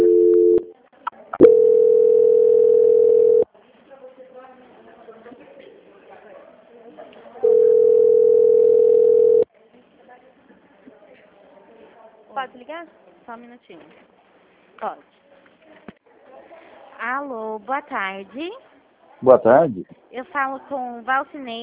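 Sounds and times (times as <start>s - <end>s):
telephone transfer tones during call hold: 0.0s - 0.7s, 1.4s - 3.4s, 7.4s - 9.5s
speech: 12.8s - 14.2s, 14.8s - 15.2s, 17.0s - 18.6s, 19.2s - 21.6s.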